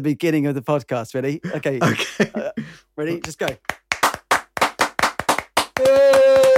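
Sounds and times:
speech: 0:00.0 - 0:03.8
two people clapping hands: 0:03.1 - 0:06.5.

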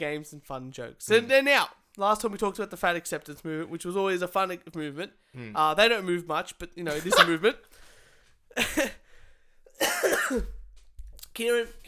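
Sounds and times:
speech: 0:00.0 - 0:07.8, 0:08.6 - 0:09.0, 0:09.8 - 0:10.6, 0:11.4 - 0:11.8
harsh raspy coughs: 0:07.0 - 0:07.4, 0:08.5 - 0:09.1, 0:09.7 - 0:10.6.

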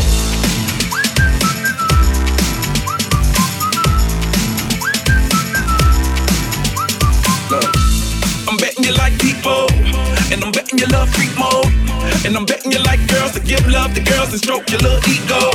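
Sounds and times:
loud punchy backing track with a steady thumping beat: 0:00.0 - 0:15.5
bright human whistle playing a catchy melody: 0:00.8 - 0:08.2
speech: 0:10.8 - 0:15.5.

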